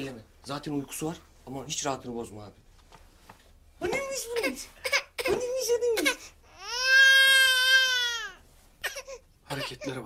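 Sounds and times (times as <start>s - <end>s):
speech: 0.0s - 2.6s, 3.8s - 6.4s, 9.5s - 10.0s
baby crying: 4.8s - 10.0s.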